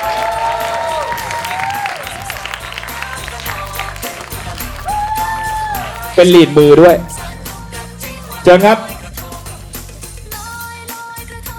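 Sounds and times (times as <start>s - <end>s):
crowd clapping: 0.0s - 6.7s
crowd cheering: 0.0s - 7.6s
speech: 6.2s - 7.1s, 8.4s - 8.9s.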